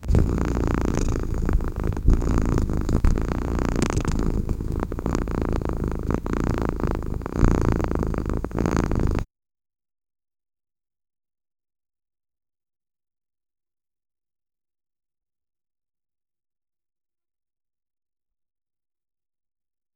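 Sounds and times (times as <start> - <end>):
cat: 0.0 - 9.3.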